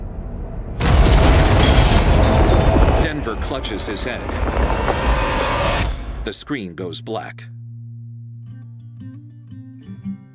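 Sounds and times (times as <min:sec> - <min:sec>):
grenade explosion in a bathroom: 0:00.0 - 0:06.4
low rumble: 0:00.0 - 0:06.8
speech: 0:03.3 - 0:05.3, 0:06.2 - 0:07.6.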